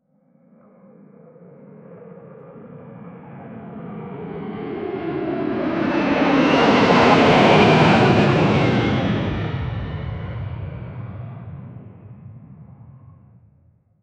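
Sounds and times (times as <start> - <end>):
commercial jet flyby: 4.3 - 13.2.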